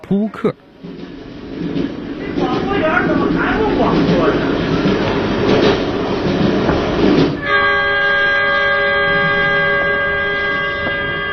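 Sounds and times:
passenger train running with a loud rumbling clatter: 0.0 - 11.3
speech: 0.1 - 1.0
long steady horn-like tone: 7.4 - 11.3.

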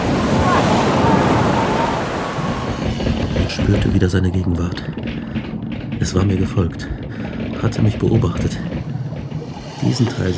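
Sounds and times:
waves in a storm at sea aboard a ship: 0.0 - 4.1, 7.3 - 10.3
wind in a storm at sea aboard a ship: 0.0 - 10.3
speech: 3.7 - 5.2, 6.0 - 7.0, 7.6 - 8.8, 9.8 - 10.3.

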